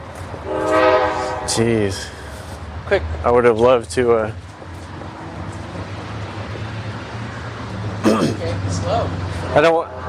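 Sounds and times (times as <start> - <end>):
train wheels and cars rumbling past: 0.0 - 10.0
train horn blaring: 0.4 - 1.8
speech: 1.5 - 2.2, 2.9 - 4.4, 8.8 - 10.0.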